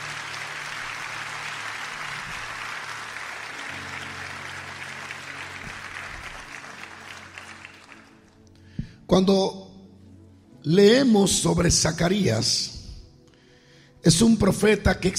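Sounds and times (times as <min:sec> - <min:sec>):
congregation applauding loudly: 0:00.0 - 0:08.4
speech: 0:09.1 - 0:09.6, 0:10.6 - 0:12.7, 0:14.0 - 0:15.1.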